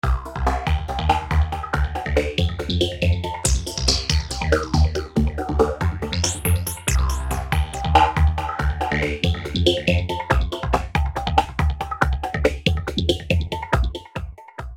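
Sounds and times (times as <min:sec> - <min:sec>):
rhythm phrase played with pitch through side band filter on synthesizer: 0:00.2 - 0:14.2.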